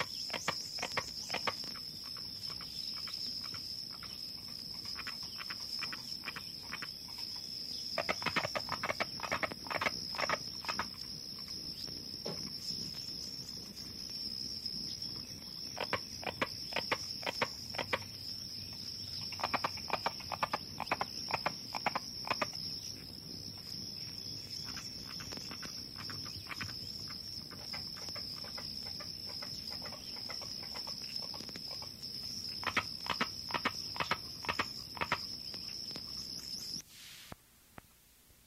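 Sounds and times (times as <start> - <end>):
carpenter frogs calling in woody knocks: 0.0 - 36.8
high insect drone in the night air: 0.0 - 37.3.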